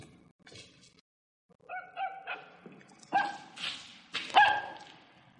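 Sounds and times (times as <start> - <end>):
dog barking as it crosses a gallery: 1.7 - 3.5, 4.3 - 4.9.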